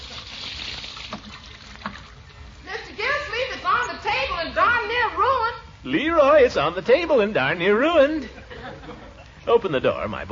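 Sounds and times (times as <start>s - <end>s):
brief water splashes from hand washing: 0.0s - 2.4s
running water pouring while someone washes their hands: 0.0s - 4.4s
speech: 5.8s - 8.4s, 9.5s - 10.3s
laughter: 8.1s - 9.4s.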